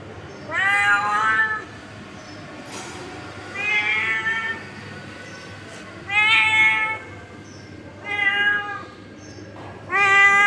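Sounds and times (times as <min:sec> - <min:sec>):
male domestic cat meowing angrily: 0:00.4 - 0:01.7, 0:03.5 - 0:04.6, 0:06.1 - 0:07.1, 0:08.0 - 0:08.9, 0:09.9 - 0:10.4.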